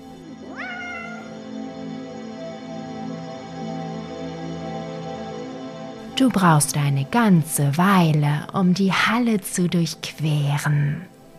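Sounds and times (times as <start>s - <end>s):
several cats meowing loudly: 0.4s - 1.4s
speech: 6.2s - 11.1s.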